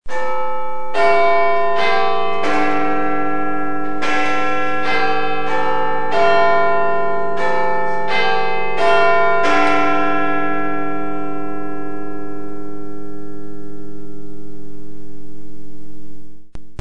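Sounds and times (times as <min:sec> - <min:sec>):
Big Ben three-quarter hour chime: 0:00.1 - 0:14.2.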